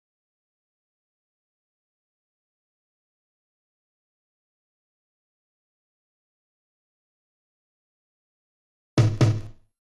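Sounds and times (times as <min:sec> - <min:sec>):
high tom drum from a drum battery: 0:09.0 - 0:09.6.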